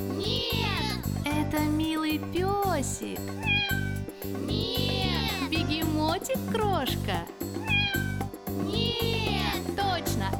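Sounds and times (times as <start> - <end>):
steady bouncy musical beat: 0.0 - 10.3
speech: 2.1 - 7.6
cat meowing: 3.3 - 5.5, 7.6 - 9.6.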